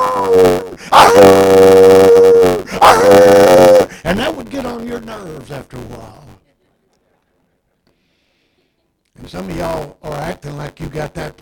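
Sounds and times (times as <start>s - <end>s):
old dog barking and baying across the fence: 0.0s - 3.9s
speech: 0.3s - 6.3s, 9.3s - 11.4s.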